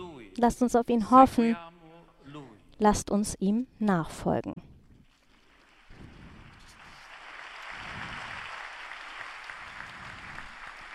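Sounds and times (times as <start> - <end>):
speech: 0.4 - 1.7, 2.8 - 4.6
large crowd applauding outdoors at a Holy Mass after a sermon: 5.3 - 10.9.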